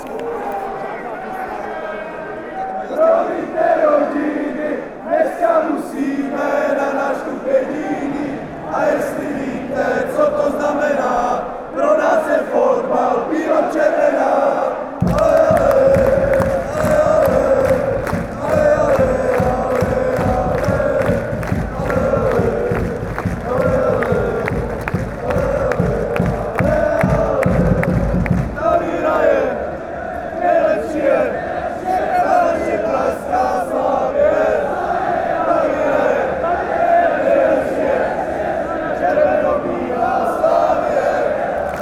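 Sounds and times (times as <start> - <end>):
fans chanting: 2.8 - 41.8.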